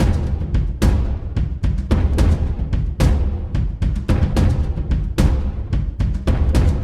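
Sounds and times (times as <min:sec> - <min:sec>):
cinematic drums: 0:00.0 - 0:06.8.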